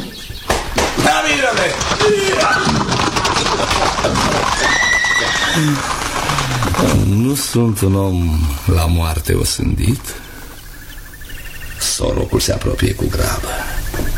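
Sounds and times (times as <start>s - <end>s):
clattering and knocking: 0.0s - 7.6s
horse neighing loudly: 1.4s - 7.6s
speech: 4.4s - 6.1s, 6.8s - 10.2s, 12.0s - 13.8s.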